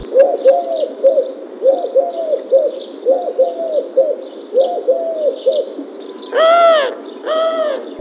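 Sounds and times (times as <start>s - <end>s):
collared dove: 0.0s - 7.9s.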